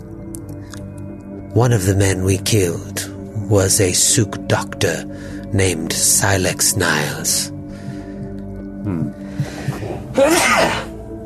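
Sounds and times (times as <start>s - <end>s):
speech: 1.5s - 7.6s, 8.8s - 9.5s
voiced inhale: 5.0s - 5.5s, 7.6s - 10.1s
man sneezing: 10.1s - 11.0s.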